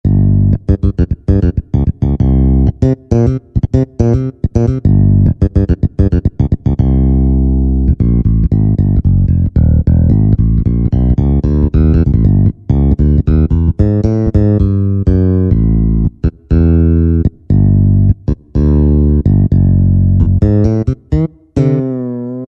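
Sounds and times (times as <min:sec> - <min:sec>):
Finger Bass factory voice on a Yamaha PSR-3000: 0:00.0 - 0:22.4.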